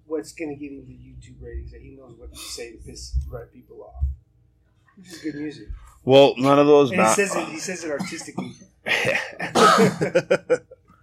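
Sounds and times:
speech: 0.2s - 4.2s, 5.0s - 10.8s
person coughing from hot cigar smoke burning the throat: 7.0s - 10.2s.

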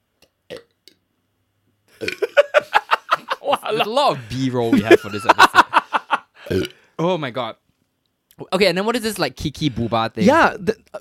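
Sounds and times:
burp: 0.5s - 1.0s, 2.0s - 2.3s, 6.4s - 6.8s
laughter: 2.2s - 6.3s
speech: 3.7s - 5.6s, 6.5s - 7.6s, 8.4s - 10.9s.

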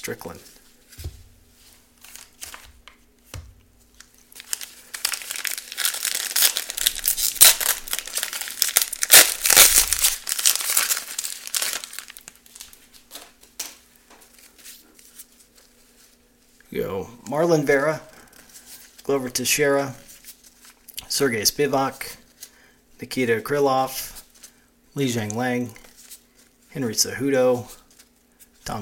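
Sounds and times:
speech: 0.0s - 1.1s, 16.7s - 18.1s, 19.1s - 20.0s, 21.2s - 22.2s, 23.0s - 24.1s, 25.0s - 25.8s, 26.8s - 27.8s
foil trading card pack wrappers crinkling and tearing: 4.0s - 13.7s.

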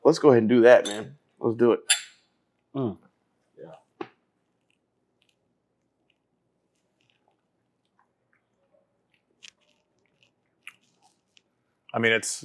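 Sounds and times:
speech: 0.1s - 2.0s, 2.8s - 3.0s, 3.6s - 3.8s, 11.9s - 12.4s
sipping bourbon: 4.6s - 11.9s
wet lip smacks while tasting a drink: 6.8s - 11.5s.

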